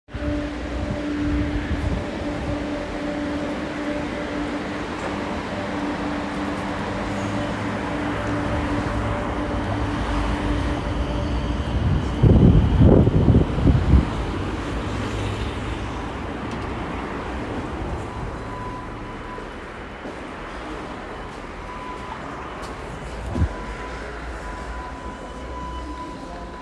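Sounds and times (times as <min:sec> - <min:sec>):
train station ambience in Schiedam Rotterdam: 0:00.1 - 0:26.5.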